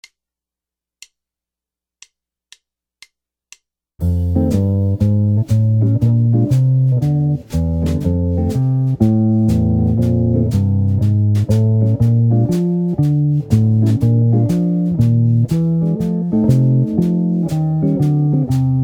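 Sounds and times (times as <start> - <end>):
blues walking bass: 4.0 - 18.8.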